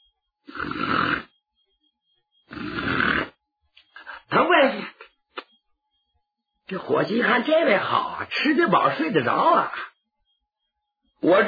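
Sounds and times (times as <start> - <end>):
person imitating snoring: 0.5 - 1.3, 2.5 - 3.4
speech: 6.7 - 9.9, 11.2 - 11.4.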